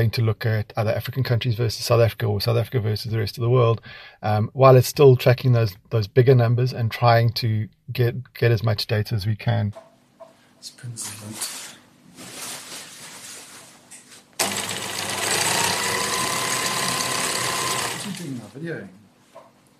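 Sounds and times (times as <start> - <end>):
speech: 0.0 - 9.9, 10.6 - 11.6, 18.6 - 19.0
sewing machine stitching a big piece of green screen fabric: 14.4 - 18.6.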